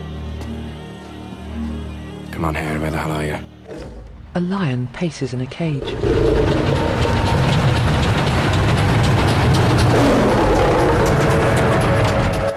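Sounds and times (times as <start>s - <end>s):
speech: 2.4s - 3.6s, 4.4s - 6.8s
police train wheels rolling over track at night: 5.9s - 12.5s.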